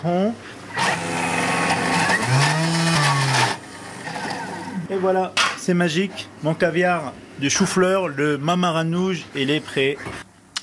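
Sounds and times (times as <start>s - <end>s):
speech: 0.0s - 1.2s, 5.0s - 10.3s
quiet room hum: 0.0s - 10.6s
blender whirring while mixing ingredients: 0.7s - 4.8s.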